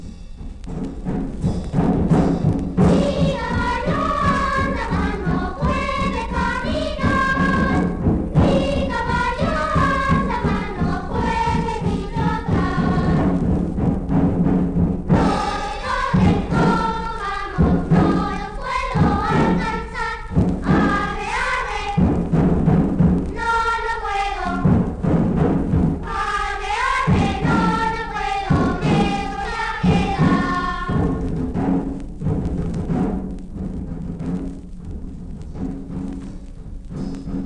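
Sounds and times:
large wooden huehuetl drum beating: 0.0s - 37.4s
children singing a lively children's game song: 2.8s - 13.6s, 15.1s - 31.9s.

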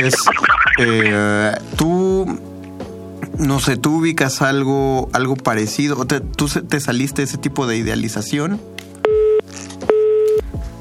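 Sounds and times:
speech: 0.0s - 2.5s, 3.4s - 8.9s
telephone line tone beeps after a dropped call: 9.1s - 10.4s.

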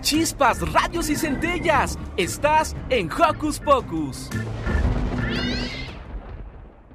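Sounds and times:
speech: 0.1s - 4.7s
drawn-out cat meow: 5.3s - 6.0s.

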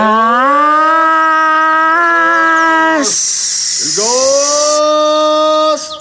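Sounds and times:
gas delivery truck's street call from a loudspeaker: 0.0s - 6.0s
harsh hiss: 3.0s - 6.0s.

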